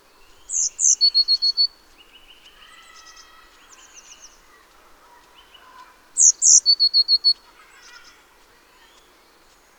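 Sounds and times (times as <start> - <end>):
Eurasian blue tit Cyanistes caeruleus caeruleus song phrases: 0.1 - 2.3, 5.6 - 8.0
faint other bird chatter: 0.3 - 9.5.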